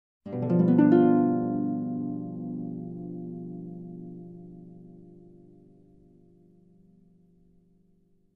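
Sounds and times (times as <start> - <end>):
harp suspicious chord strum: 0.3 - 6.8.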